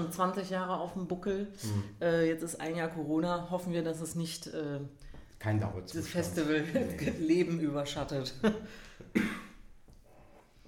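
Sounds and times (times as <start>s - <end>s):
speech: 0.0s - 9.4s
single sharp cough: 9.1s - 9.6s.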